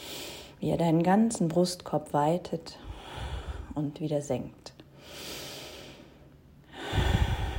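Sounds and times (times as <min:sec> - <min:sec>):
deep breathing in and out during a guided breathing exercise: 0:00.0 - 0:00.6, 0:02.8 - 0:03.8, 0:04.9 - 0:07.5
speech: 0:00.6 - 0:02.8, 0:03.8 - 0:04.7.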